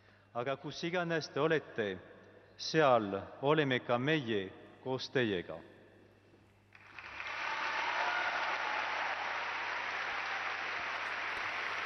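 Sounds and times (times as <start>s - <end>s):
speech: 0.4s - 5.7s
large crowd of young people applauding in a cathedral: 6.7s - 11.8s.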